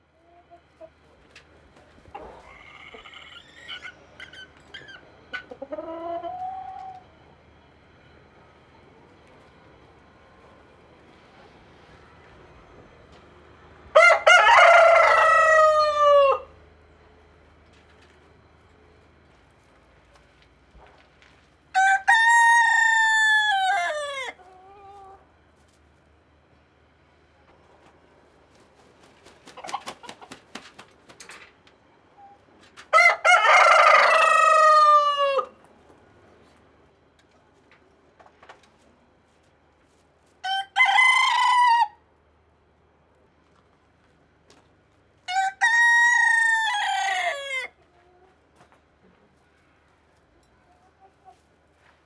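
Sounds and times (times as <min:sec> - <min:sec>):
rooster and hen clucking indoors: 0:00.1 - 0:07.5, 0:13.8 - 0:16.6, 0:21.8 - 0:25.3, 0:29.0 - 0:30.8, 0:32.2 - 0:35.7, 0:40.4 - 0:42.0, 0:45.3 - 0:49.3.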